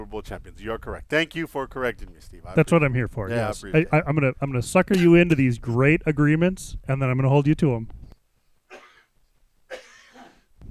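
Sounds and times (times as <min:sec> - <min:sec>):
speech: 0:00.0 - 0:08.0
person with a scratchy throat coughing while recovering from an illness: 0:08.7 - 0:09.1, 0:09.7 - 0:10.5.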